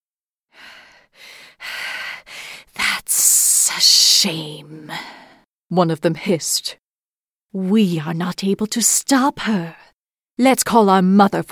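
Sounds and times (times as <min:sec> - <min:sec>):
heavy rapid panting breaths: 0:00.6 - 0:02.8
speech: 0:03.8 - 0:06.8, 0:07.5 - 0:09.8, 0:10.4 - 0:11.5.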